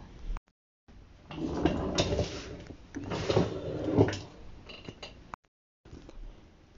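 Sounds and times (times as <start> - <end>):
chair creaking and scraping as someone moves about on it: 1.3 - 5.1.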